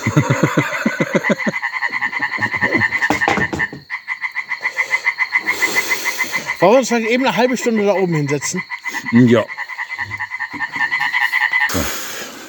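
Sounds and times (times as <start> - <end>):
laughter: 0.0 - 3.2
chorus of frogs croaking in a garden: 0.0 - 12.2
speech: 0.1 - 1.5, 6.6 - 9.6.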